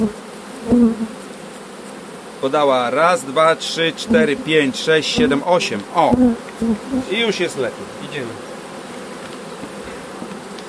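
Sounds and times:
speech: 0.0 - 1.2, 2.4 - 8.5
honeybees buzzing at an open hive: 0.0 - 10.6.

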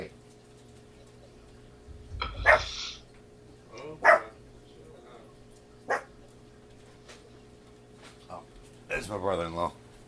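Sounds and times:
low hum: 0.0 - 10.0
female pet dog barking: 2.4 - 2.8, 4.0 - 4.4, 5.9 - 6.1
speech: 9.1 - 9.8.

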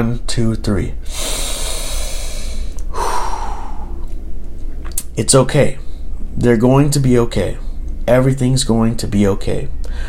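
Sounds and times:
speech: 0.0 - 1.4, 5.2 - 5.8, 6.4 - 10.0
low steady hum: 0.0 - 10.0
deep breath: 1.0 - 4.1, 9.8 - 10.0.

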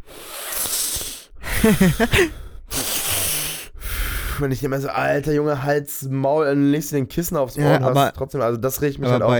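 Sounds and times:
person imitating a sleeper's loud heavy breathing: 0.0 - 4.4
laughter: 1.4 - 2.3, 9.0 - 9.3
speech: 1.6 - 2.4, 4.4 - 9.3.

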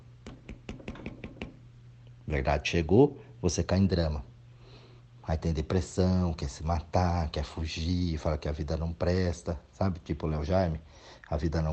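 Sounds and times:
low constant hum: 0.0 - 11.7
knocking on a hard surface: 0.2 - 1.6
speech: 2.3 - 4.3, 5.3 - 11.7.

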